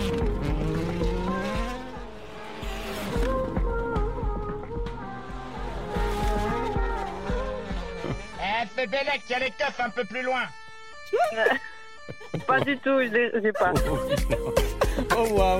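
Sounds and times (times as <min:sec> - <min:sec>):
car engine revving: 0:00.0 - 0:10.0
speech: 0:08.8 - 0:11.7, 0:12.3 - 0:15.5
laughter: 0:11.2 - 0:15.5.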